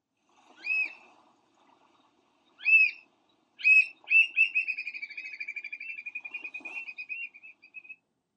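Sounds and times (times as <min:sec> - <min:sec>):
American oystercatcher piping calls: 0:03.6 - 0:07.9.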